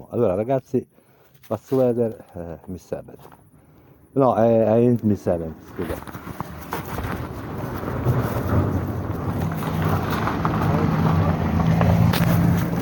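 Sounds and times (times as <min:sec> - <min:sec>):
speech: 0:00.1 - 0:03.4, 0:04.2 - 0:06.4
car passing by: 0:07.0 - 0:12.8.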